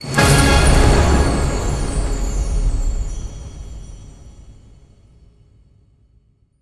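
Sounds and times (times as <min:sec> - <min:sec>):
mega win ending sound: 0:00.1 - 0:03.0.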